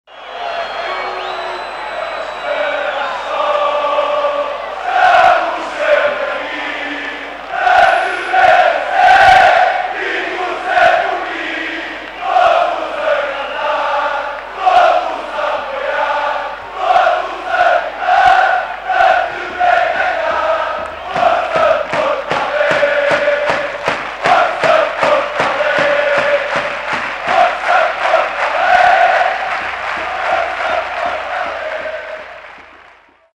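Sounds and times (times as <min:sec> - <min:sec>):
crowd chanting in Porto: 0:00.1 - 0:33.3.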